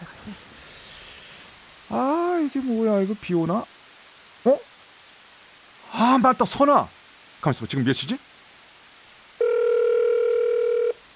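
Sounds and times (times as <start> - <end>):
speech: 1.9 - 3.8, 4.4 - 4.6, 6.1 - 8.3
phone line ringback tone: 9.4 - 11.0.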